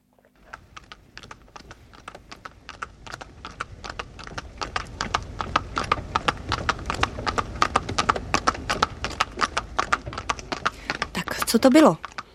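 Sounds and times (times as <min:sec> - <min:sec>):
horse hooves trotting in clip-clop rhythm: 0:00.1 - 0:12.3
low rumble: 0:01.1 - 0:11.2
speech: 0:11.6 - 0:12.1.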